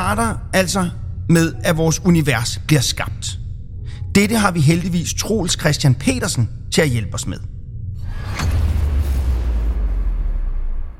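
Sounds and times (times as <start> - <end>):
speech: 0.0 - 3.4, 4.2 - 7.5
sustained low rumble: 0.0 - 10.9
cinematic explosion boom effect for the Big Bang: 8.0 - 10.9.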